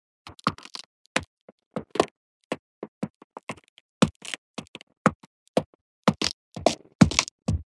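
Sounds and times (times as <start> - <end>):
footsteps on wood: 3.0 - 7.7.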